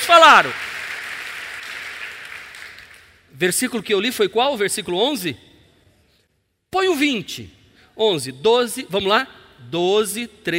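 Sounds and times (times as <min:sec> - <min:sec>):
audience clapping together in applause: 0:00.0 - 0:03.1
speech: 0:00.1 - 0:00.7, 0:03.4 - 0:05.5, 0:06.7 - 0:10.5.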